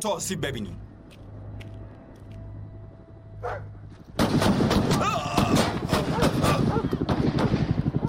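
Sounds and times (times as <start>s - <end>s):
speech: 0.0s - 0.9s, 3.4s - 3.7s
rapid repeated gunshots: 4.2s - 8.0s
people shouting: 4.9s - 6.7s.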